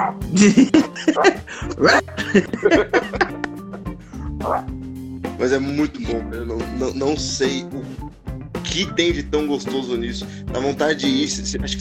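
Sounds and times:
dog barking with higher yips: 0:00.0 - 0:00.2, 0:01.0 - 0:02.0, 0:04.4 - 0:04.7
speech: 0:00.0 - 0:03.2, 0:04.4 - 0:04.8, 0:05.4 - 0:08.0, 0:08.6 - 0:11.7
laughter: 0:00.3 - 0:03.8.

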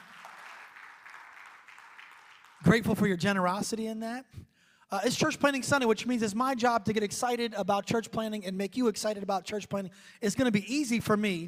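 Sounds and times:
church audience clapping: 0:00.0 - 0:03.1
speech: 0:02.6 - 0:11.4.

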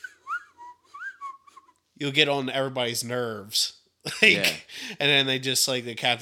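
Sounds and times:
person whistling a short wavering tune: 0:00.0 - 0:01.7
speech: 0:02.0 - 0:06.2
laughter: 0:04.1 - 0:04.6.

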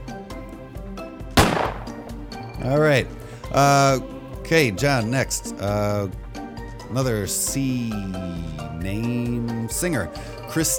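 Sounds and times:
quiet steady musical background: 0:00.0 - 0:10.7
gunshot sound effect: 0:01.4 - 0:02.1
speech: 0:02.6 - 0:06.2, 0:06.9 - 0:10.7.

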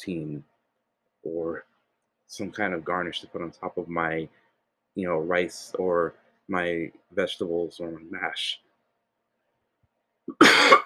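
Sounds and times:
speech: 0:00.0 - 0:00.5, 0:01.2 - 0:01.7, 0:02.3 - 0:04.4, 0:05.0 - 0:08.6, 0:10.3 - 0:10.8
single loud harsh cough with a throaty catch: 0:10.3 - 0:10.8.

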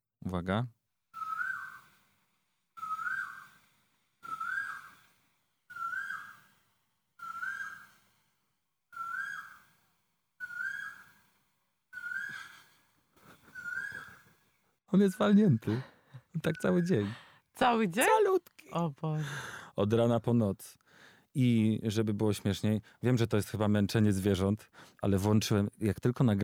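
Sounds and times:
speech: 0:00.2 - 0:00.8, 0:14.9 - 0:26.4
bird giving a loud whistled call in Thailand: 0:01.2 - 0:02.0, 0:02.8 - 0:06.6, 0:07.2 - 0:08.1, 0:09.0 - 0:09.8, 0:10.4 - 0:14.4.

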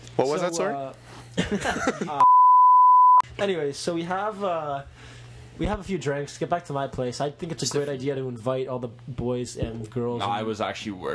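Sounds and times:
speech: 0:00.2 - 0:02.2, 0:03.4 - 0:11.1
loud steady electronic censor beep over a person's name: 0:02.2 - 0:03.2.

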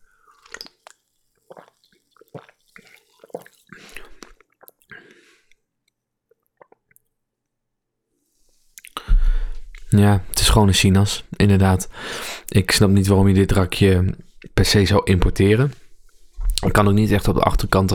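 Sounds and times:
sipping and swallowing of an orange soda from a can: 0:00.1 - 0:05.1, 0:06.3 - 0:07.1, 0:08.8 - 0:09.2
speech: 0:09.9 - 0:15.8, 0:16.7 - 0:17.9.

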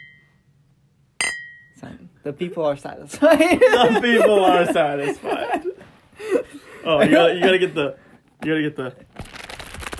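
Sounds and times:
two glasses clinking together in a toast: 0:01.2 - 0:01.8
speech: 0:01.8 - 0:09.1
laughter: 0:03.2 - 0:07.9.

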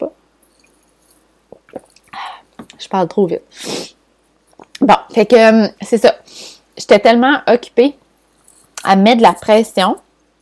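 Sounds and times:
person sipping lemon water: 0:01.5 - 0:02.4
speech: 0:02.9 - 0:03.8, 0:04.9 - 0:06.1, 0:06.9 - 0:08.0, 0:08.8 - 0:10.0.

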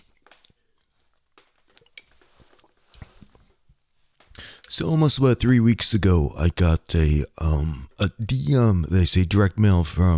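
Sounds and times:
person sipping a drink with wet mouth sounds: 0:00.0 - 0:04.7
soft slurps: 0:00.0 - 0:04.7
speech: 0:04.7 - 0:10.1.

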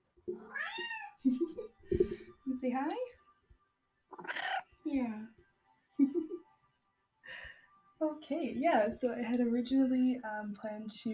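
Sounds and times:
female tortoiseshell cat meowing: 0:00.4 - 0:01.2, 0:04.1 - 0:04.8
speech: 0:02.6 - 0:03.2, 0:04.2 - 0:05.4, 0:08.0 - 0:11.1.

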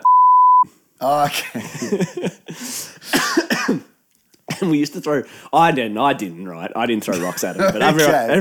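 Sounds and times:
high-pitched censor bleep covering spoken names: 0:00.0 - 0:00.6
speech: 0:01.0 - 0:03.8, 0:04.6 - 0:08.3
people laughing: 0:01.3 - 0:02.8, 0:07.1 - 0:08.3.

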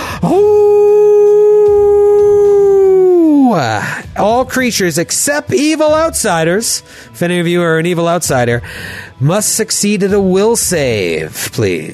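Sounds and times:
speech: 0:00.2 - 0:00.7, 0:04.2 - 0:11.9
person's voice imitating a mastiff howling at the moon: 0:00.2 - 0:03.7.

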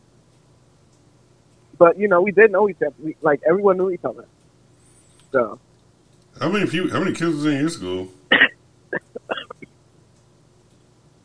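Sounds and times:
speech: 0:01.8 - 0:04.4, 0:05.3 - 0:05.7, 0:06.4 - 0:08.4
sharp cough: 0:08.3 - 0:09.6
hacking and throat-clearing: 0:08.3 - 0:09.7.

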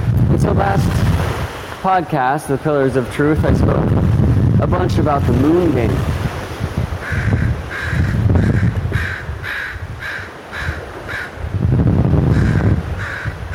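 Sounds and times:
gusty wind rumbling: 0:00.0 - 0:13.5
speech: 0:00.4 - 0:06.2
crow cawing: 0:07.0 - 0:11.4, 0:12.3 - 0:13.5.

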